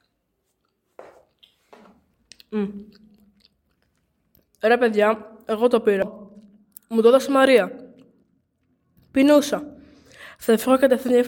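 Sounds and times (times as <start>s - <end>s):
voice imitating crunchy chewing and munching: 2.3s - 3.8s
speech: 2.5s - 3.0s, 4.6s - 6.2s, 6.9s - 7.8s, 9.2s - 9.8s, 10.4s - 11.2s.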